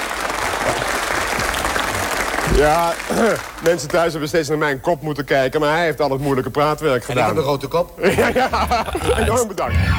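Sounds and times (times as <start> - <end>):
audience applause: 0.0 - 3.5
speech: 2.5 - 9.9
laughter: 8.0 - 9.6.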